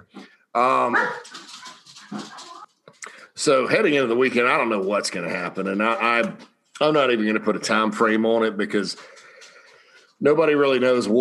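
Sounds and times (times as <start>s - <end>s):
speech: 0.1s - 1.4s, 3.4s - 9.2s, 10.2s - 11.1s
dog barking: 0.9s - 2.5s.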